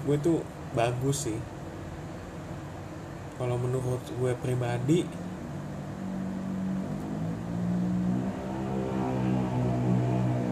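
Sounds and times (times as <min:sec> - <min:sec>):
speech: 0:00.0 - 0:01.6, 0:03.4 - 0:05.2
motorcycle engine droning outside: 0:04.9 - 0:10.4.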